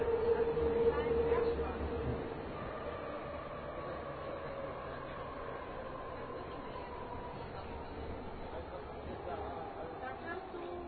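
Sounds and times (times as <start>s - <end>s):
indistinct chatter from other metro passengers: 0.0s - 10.8s
rumble inside a moving metro car: 0.0s - 10.8s.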